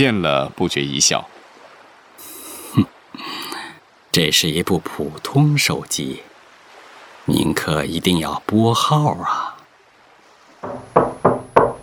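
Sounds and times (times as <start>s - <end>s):
speech: 0.0s - 1.4s, 2.7s - 3.4s, 4.2s - 6.3s, 7.2s - 9.5s
knocking on a door: 10.6s - 11.8s.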